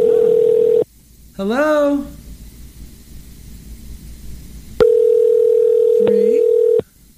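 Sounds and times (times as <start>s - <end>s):
telephone ringback tone on an outgoing call: 0.0s - 0.8s, 4.8s - 6.8s
speech: 1.4s - 2.2s.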